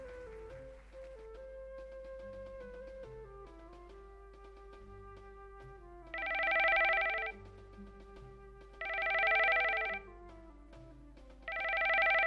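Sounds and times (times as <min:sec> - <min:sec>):
quiet instrumental music: 0:00.0 - 0:12.2
telephone ringing: 0:06.2 - 0:07.4, 0:08.8 - 0:10.0, 0:11.5 - 0:12.2.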